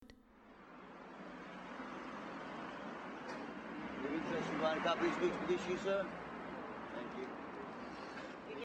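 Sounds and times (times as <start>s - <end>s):
street sounds: 0.0s - 8.6s.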